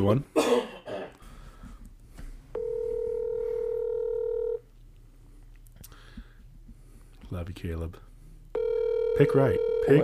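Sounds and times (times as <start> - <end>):
speech: 0.0 - 0.4, 7.3 - 8.1, 9.2 - 10.0
low hum: 0.0 - 10.0
phone's electronic outgoing ringback tone: 2.5 - 4.6, 8.6 - 10.0.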